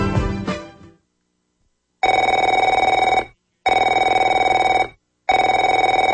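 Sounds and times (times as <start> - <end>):
telephone ringing: 2.0 - 6.1.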